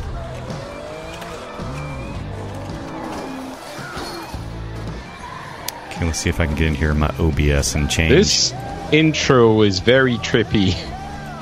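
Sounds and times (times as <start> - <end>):
crunch of race cars wrecking and piling up: 0.0 - 5.6
race car tires squealing and skidding: 0.0 - 11.4
race cars roaring past: 0.0 - 11.4
speech: 6.0 - 10.9.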